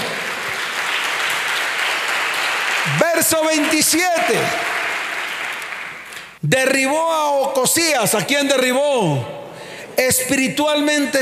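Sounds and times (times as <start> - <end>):
audience applauding at a church service: 0.0 - 6.4
speech: 2.8 - 4.8, 6.4 - 9.4, 10.0 - 11.2.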